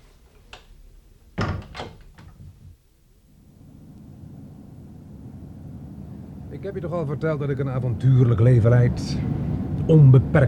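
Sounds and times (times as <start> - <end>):
low steady rumble: 0.0 - 10.4
door swinging shut with a soft click, heavy thump and rattling knocks: 1.4 - 2.6
speech: 6.6 - 10.4.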